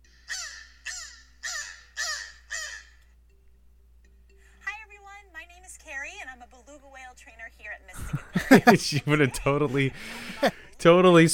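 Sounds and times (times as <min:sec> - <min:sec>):
beluga whale calling with harsh raspy caws: 0:00.1 - 0:03.0
speech: 0:07.5 - 0:11.3
laughter: 0:08.0 - 0:10.8.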